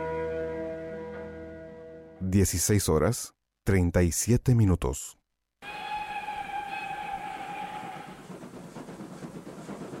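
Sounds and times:
speech: 0:02.2 - 0:05.2
train whistle steady sustained blast: 0:05.6 - 0:08.4
train rumbling and clattering as it pulls away: 0:05.7 - 0:09.9.

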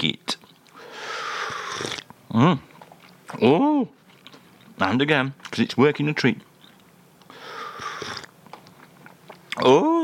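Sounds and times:
slurping a hot drink from a china cup: 0:01.0 - 0:02.1, 0:07.4 - 0:08.3
speech: 0:01.8 - 0:02.7, 0:03.3 - 0:04.0, 0:04.8 - 0:06.5, 0:09.6 - 0:10.0.

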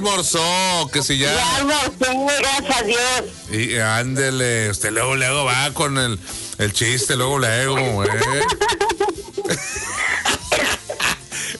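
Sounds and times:
speech: 0:00.0 - 0:08.9
laughter: 0:07.7 - 0:11.5
person coughing: 0:10.0 - 0:11.3.

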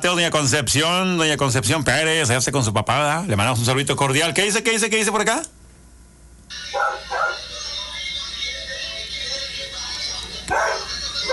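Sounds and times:
speech: 0:00.0 - 0:05.6
dog barking: 0:06.7 - 0:07.5, 0:10.5 - 0:11.3.

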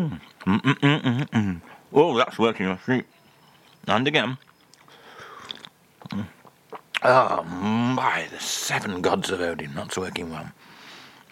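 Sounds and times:
speech: 0:00.0 - 0:03.2, 0:03.8 - 0:04.5, 0:06.1 - 0:06.4, 0:07.0 - 0:10.7
biting a cream-filled biscuit: 0:03.5 - 0:07.1.

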